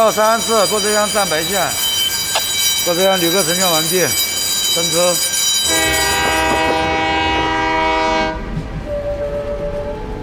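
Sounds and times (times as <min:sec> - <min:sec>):
speech: 0:00.0 - 0:01.9, 0:02.8 - 0:04.2, 0:04.8 - 0:06.0
low rumble of train: 0:00.0 - 0:10.2
loud sustained train whistle: 0:05.7 - 0:10.2.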